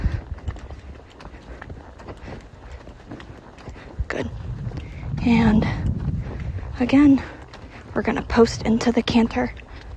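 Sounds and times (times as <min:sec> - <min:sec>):
horse hooves in a relaxed trot during a riding session: 0:00.0 - 0:09.9
low rumbling background: 0:03.8 - 0:09.9
speech: 0:04.2 - 0:04.4, 0:05.2 - 0:05.9, 0:06.8 - 0:07.4, 0:08.0 - 0:09.6.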